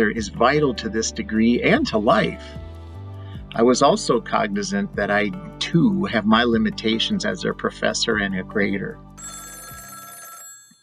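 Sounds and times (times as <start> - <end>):
speech: 0.0 - 2.6, 3.5 - 9.4
telephone ringing with bright buzzing tone: 9.2 - 10.8.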